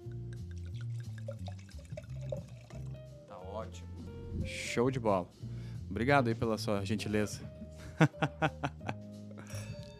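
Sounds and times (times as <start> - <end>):
wine pouring into a glass: 0.0 - 3.1
speech: 3.6 - 8.8
laughter: 7.8 - 9.0.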